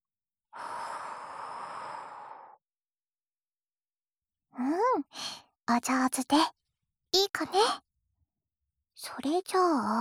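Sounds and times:
person breathing slowly: 0.6 - 2.6
speech: 4.6 - 7.8, 9.0 - 9.9.

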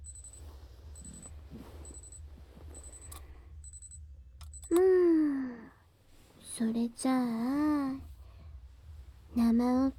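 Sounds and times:
electronic alarm beeping: 0.0 - 4.8
low hum: 0.0 - 9.9
speech: 6.6 - 7.6, 9.6 - 9.9.

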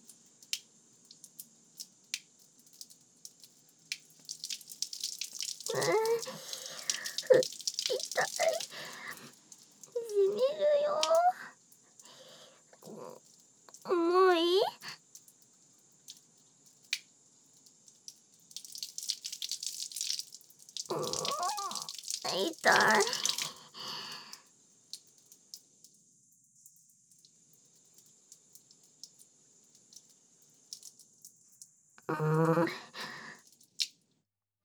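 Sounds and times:
water running from a tap while washing feet: 0.0 - 34.0
water splashing while feet are washed: 3.9 - 11.4, 18.5 - 24.1.

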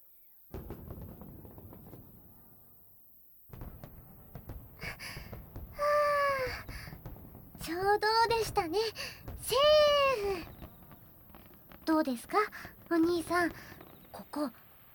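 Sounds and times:
fireworks crackling and popping outdoors: 0.5 - 14.9
loud whistling firework rocket shrieking: 4.8 - 14.9
speech: 7.7 - 10.5, 11.9 - 14.6.

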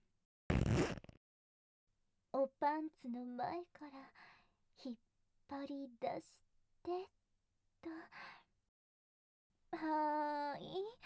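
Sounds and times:
trouser zipper pulled down: 0.5 - 1.2
speech: 2.4 - 7.2, 7.8 - 8.4, 9.7 - 11.0.

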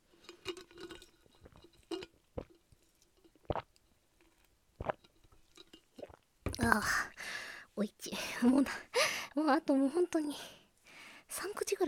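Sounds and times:
person gulping a drink: 0.5 - 2.6, 3.3 - 3.8, 4.8 - 6.8
speech: 6.7 - 7.1, 7.8 - 10.6, 11.3 - 11.8.

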